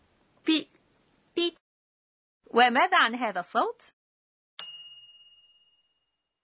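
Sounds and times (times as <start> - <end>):
speech: 2.6 - 4.0
microwave oven ding when cooking finishes: 4.6 - 6.1.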